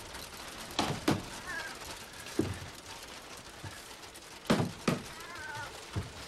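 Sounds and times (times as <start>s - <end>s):
banging on wooden floorboards: 0.8s - 1.4s, 4.5s - 6.2s.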